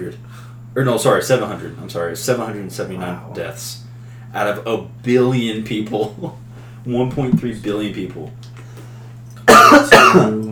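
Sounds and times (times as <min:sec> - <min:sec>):
speech: 0:00.0 - 0:08.6, 0:10.1 - 0:10.5
faint steady hum: 0:00.0 - 0:10.5
sharp coughs: 0:09.5 - 0:10.4.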